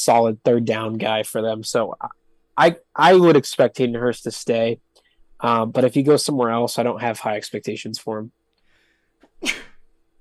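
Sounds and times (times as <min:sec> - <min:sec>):
speech: 0:00.0 - 0:08.4, 0:09.4 - 0:09.7
quiet breathing: 0:04.9 - 0:05.4, 0:08.6 - 0:09.2
sneeze: 0:09.4 - 0:09.8.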